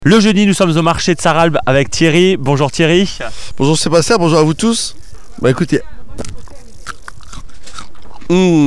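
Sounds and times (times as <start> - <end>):
speech: 0.0 - 6.3, 8.3 - 8.6
low steady background at the Sarralbe market: 0.0 - 8.6
fresh early-season radishes crunching as bitten: 3.7 - 8.6.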